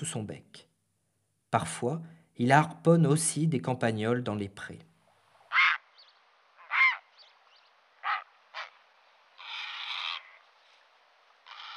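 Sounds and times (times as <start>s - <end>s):
speech: 0.0s - 0.7s, 1.5s - 4.9s
grey heron uttering coarse rasping croaks: 5.4s - 10.5s, 11.4s - 11.7s.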